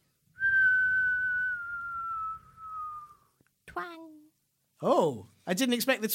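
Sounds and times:
whistle thrown off a hilltop shrilling: 0.4 - 3.3
speech: 4.8 - 6.1.

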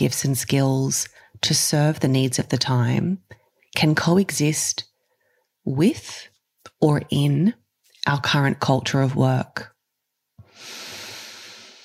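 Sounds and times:
speech: 0.0 - 4.9, 5.6 - 9.7
deep breath: 10.4 - 11.8.

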